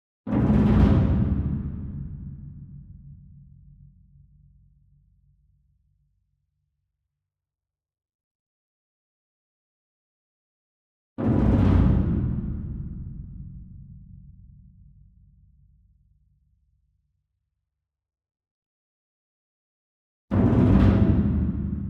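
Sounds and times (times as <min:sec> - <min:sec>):
distant taiko drum roll: 0:00.3 - 0:03.0, 0:11.2 - 0:13.9, 0:20.3 - 0:21.8.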